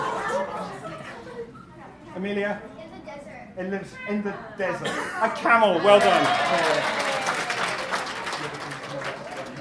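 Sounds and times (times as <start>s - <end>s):
speech: 2.2s - 2.8s, 3.6s - 7.2s
room full of people applauding: 5.8s - 9.5s.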